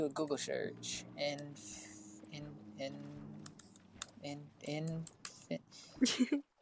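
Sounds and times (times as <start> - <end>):
speech: 0.0 - 3.2, 4.2 - 6.5
voice imitating keyboard typing with hissy clicking mouth sounds: 1.2 - 5.7.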